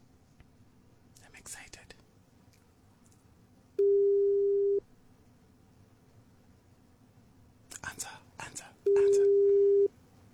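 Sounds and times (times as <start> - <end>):
person whispering: 1.2 - 2.0, 7.7 - 9.3
telephone ringback tone on an outgoing call: 3.8 - 4.8, 8.9 - 9.9.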